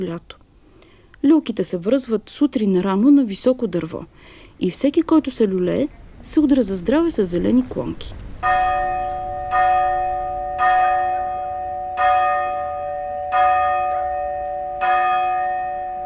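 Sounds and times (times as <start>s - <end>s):
speech: 0.0s - 0.4s, 1.2s - 8.7s
festive church bells ringing: 8.4s - 16.0s.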